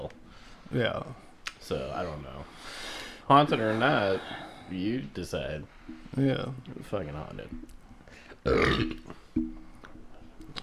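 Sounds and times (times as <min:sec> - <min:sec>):
faint noise: 0:00.0 - 0:10.6
speech: 0:00.7 - 0:07.8, 0:08.4 - 0:09.6
person burping: 0:08.4 - 0:09.2.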